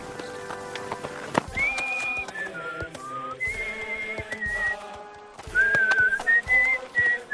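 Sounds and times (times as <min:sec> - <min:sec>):
hoof-like clopping: 0:00.0 - 0:07.3
light street bustle: 0:00.0 - 0:07.3
grandfather and grandson whistling an anthem melody on city streets: 0:01.5 - 0:07.3.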